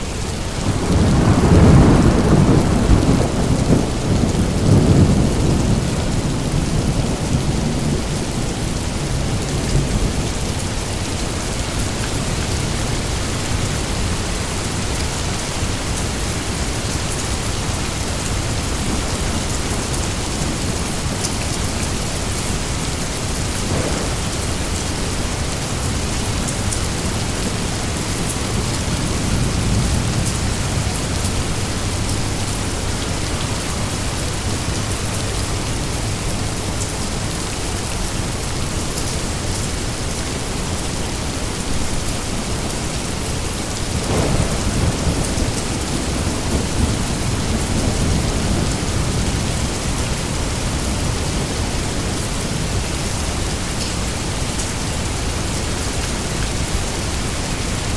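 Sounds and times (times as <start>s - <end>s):
rainstorm: 0.0s - 57.9s.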